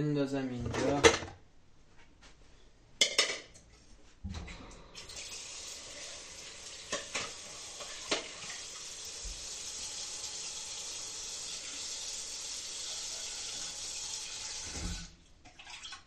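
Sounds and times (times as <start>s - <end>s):
speech: 0.0s - 1.4s
tuna can clanking into a metal cooking pot: 6.9s - 8.4s.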